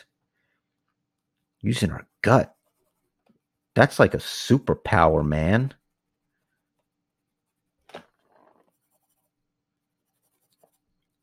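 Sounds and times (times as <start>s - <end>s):
speech: 1.6s - 2.6s, 3.8s - 5.8s
pencil scribbling on paper: 2.1s - 3.7s, 5.7s - 11.2s.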